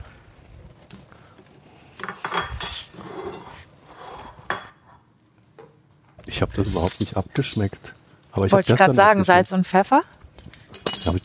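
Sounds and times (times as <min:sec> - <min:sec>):
plates and cutlery clattering as plates are handed over for serving: 0:02.0 - 0:05.0, 0:06.6 - 0:07.8, 0:10.4 - 0:11.2
speech: 0:06.4 - 0:10.2, 0:11.1 - 0:11.2.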